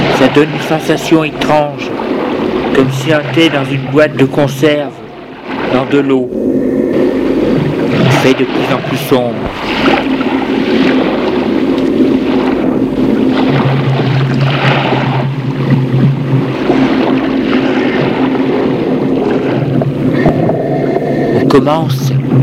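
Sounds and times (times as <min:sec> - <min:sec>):
deep droning tone: 0:00.0 - 0:22.4
submarine descending vertically underwater, low rumble and mechanical hum: 0:00.0 - 0:22.4
speech: 0:00.3 - 0:01.9, 0:02.8 - 0:05.0, 0:05.7 - 0:06.6, 0:08.2 - 0:10.2, 0:21.6 - 0:22.1.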